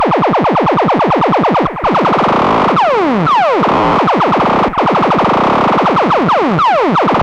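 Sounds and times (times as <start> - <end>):
analogue ribbon synthesizer loop through delay: 0.0 - 7.2.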